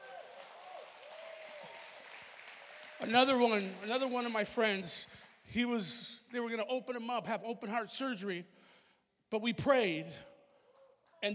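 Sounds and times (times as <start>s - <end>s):
faint whoops from a congregation: 0.0s - 2.1s
congregation applause: 0.0s - 5.4s
speech: 3.0s - 8.6s, 9.3s - 10.3s.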